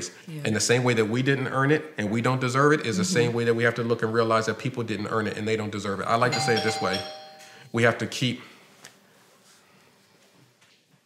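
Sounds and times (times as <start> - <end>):
speech: 0.0 - 8.5
doorbell chime ringing: 6.2 - 7.8.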